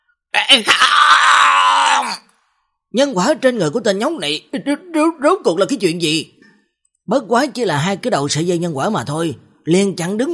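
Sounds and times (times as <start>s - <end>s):
speech: 0.5s - 1.2s, 2.9s - 6.4s, 7.1s - 10.3s
person voicing a cursed sorcerer's unwilling groaning roar: 0.6s - 2.2s.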